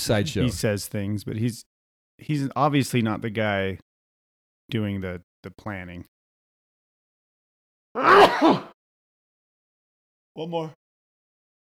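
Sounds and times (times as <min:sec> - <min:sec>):
speech: 0:00.0 - 0:03.9, 0:04.7 - 0:06.1, 0:08.0 - 0:08.7, 0:10.4 - 0:10.8
sneeze: 0:08.0 - 0:08.8.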